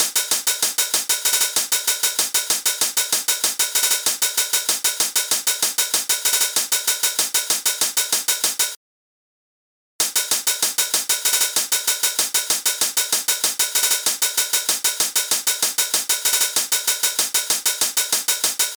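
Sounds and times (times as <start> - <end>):
hi-hat: 0.0 - 8.8, 10.0 - 18.7.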